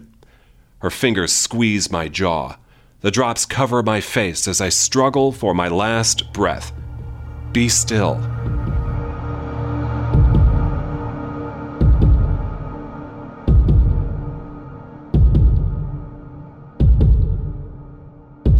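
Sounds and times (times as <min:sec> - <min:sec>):
speech: 0:00.8 - 0:06.8, 0:07.5 - 0:08.6
continuous low hum: 0:05.3 - 0:18.5
heart beating slowly and heavily: 0:08.4 - 0:09.0, 0:11.8 - 0:12.6, 0:13.5 - 0:14.4, 0:15.2 - 0:16.0, 0:16.8 - 0:17.7.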